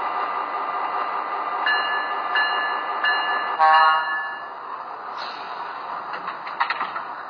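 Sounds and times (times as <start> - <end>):
passenger train from Portland rumbling into Exeter station: 0.0 - 7.2
short high passenger train horn toots: 3.6 - 4.1.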